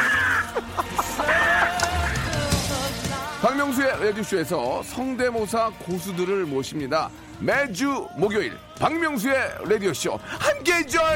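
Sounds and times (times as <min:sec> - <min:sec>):
woman in her early thirties imitating crow caws: 0:00.0 - 0:01.9
laughter: 0:00.0 - 0:02.4
speech: 0:03.6 - 0:11.1.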